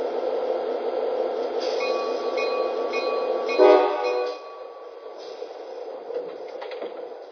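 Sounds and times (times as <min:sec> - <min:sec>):
passenger train rumbling at a station: 0:00.0 - 0:07.3
sharp horn-like tone of a passenger train: 0:03.6 - 0:04.5.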